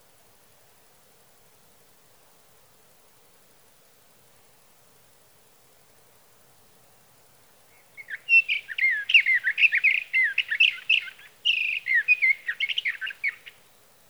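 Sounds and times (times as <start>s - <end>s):
sage thrasher singing a rapid stream of warbling notes: 8.0s - 13.6s.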